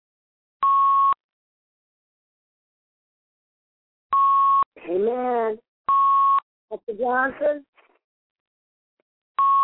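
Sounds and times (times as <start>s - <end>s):
single-pitch electronic beep from a phone: 0.6s - 1.2s, 4.2s - 4.7s, 5.9s - 6.4s, 9.4s - 9.6s
speech: 4.9s - 5.7s, 6.7s - 7.7s.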